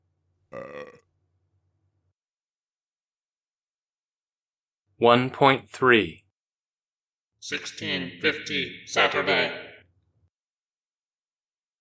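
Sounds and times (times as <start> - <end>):
deep bassy carbonated burp: 0.5 - 1.1
speech: 5.0 - 6.2, 7.4 - 9.6.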